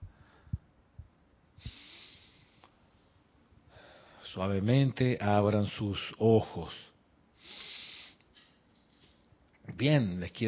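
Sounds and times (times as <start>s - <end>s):
slow deep breath in and out: 0.0s - 0.7s, 1.6s - 3.1s, 3.7s - 4.3s, 7.4s - 8.2s
speech: 4.4s - 6.9s, 9.8s - 10.4s.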